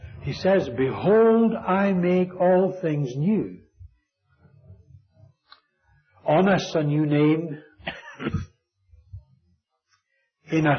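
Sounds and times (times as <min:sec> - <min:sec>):
speech: 0:00.2 - 0:03.6, 0:06.3 - 0:08.5, 0:10.5 - 0:10.7
person coughing: 0:07.8 - 0:08.6.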